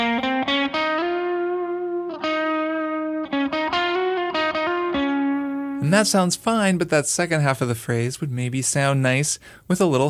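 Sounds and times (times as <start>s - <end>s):
electric guitar with distortion playing a solo: 0.0s - 6.5s
speech: 5.9s - 10.0s.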